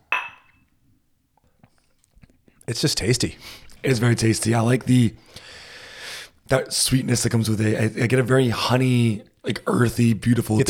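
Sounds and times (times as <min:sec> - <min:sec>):
glasses clinking in a toast: 0:00.0 - 0:00.7
speech: 0:02.7 - 0:05.5, 0:06.5 - 0:10.6.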